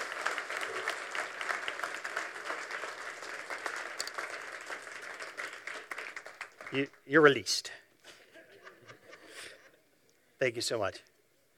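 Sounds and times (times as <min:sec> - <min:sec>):
audience applause: 0:00.0 - 0:07.0
speech: 0:06.7 - 0:07.8, 0:10.4 - 0:11.1
laughter: 0:08.0 - 0:09.8.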